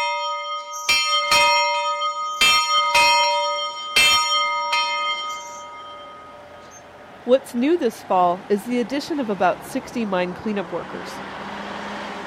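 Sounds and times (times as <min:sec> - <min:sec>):
church bell ringing at a Lutheran retreat center: 0:00.0 - 0:06.9
speech: 0:07.3 - 0:11.4.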